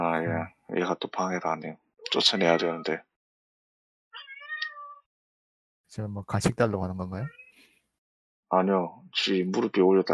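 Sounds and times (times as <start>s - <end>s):
speech: 0.2s - 3.1s, 5.9s - 7.4s, 8.5s - 10.1s
domestic cat meowing: 2.1s - 3.0s, 4.2s - 5.1s.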